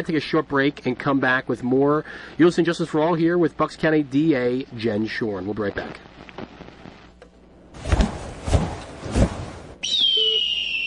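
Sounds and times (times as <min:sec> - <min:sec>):
speech: 0:00.0 - 0:06.1
bird call as a high steady whistle: 0:09.8 - 0:10.8.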